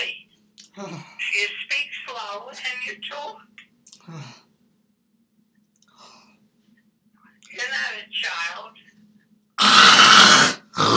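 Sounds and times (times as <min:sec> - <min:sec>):
speech: 0:00.8 - 0:04.4
loud raspy fart: 0:09.6 - 0:10.9.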